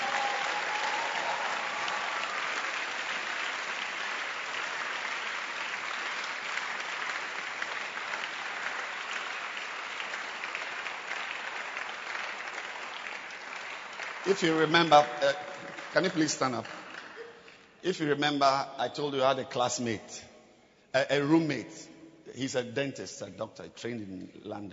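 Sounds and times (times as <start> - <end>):
audience clapping hands: 0.0 - 18.2
speech: 14.2 - 16.8, 17.8 - 20.3, 20.9 - 24.7.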